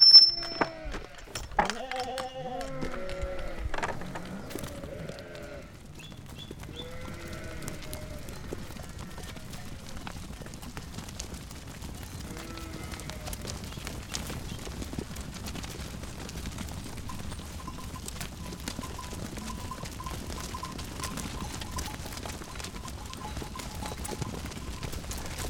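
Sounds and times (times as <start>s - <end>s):
sheep hooves clattering and shuffling: 0.0s - 25.4s
flock of sheep bleating: 0.6s - 5.8s, 6.7s - 10.2s, 12.2s - 13.6s.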